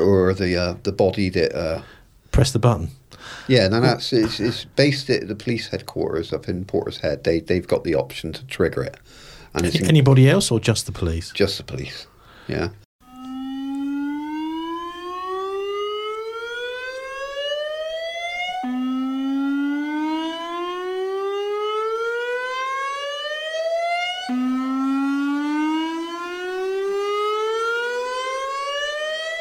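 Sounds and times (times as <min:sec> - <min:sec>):
speech: 0:00.3 - 0:12.8
civil defence warning siren wailing: 0:13.0 - 0:29.4.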